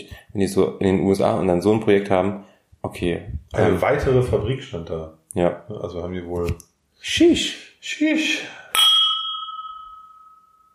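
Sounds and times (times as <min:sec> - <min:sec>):
speech: 0:00.0 - 0:08.9
beer glasses clinking in a toast: 0:08.8 - 0:10.7.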